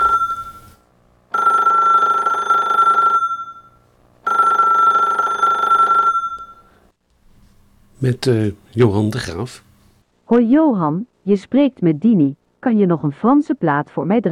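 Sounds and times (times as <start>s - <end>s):
telephone ringing in long steady electronic bursts: 0.0s - 6.8s
speech: 8.0s - 9.7s, 10.3s - 14.3s.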